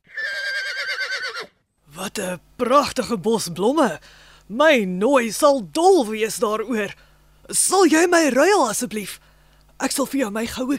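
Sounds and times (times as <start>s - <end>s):
horse whinnying: 0.0s - 1.6s
speech: 2.0s - 9.2s, 9.8s - 10.7s.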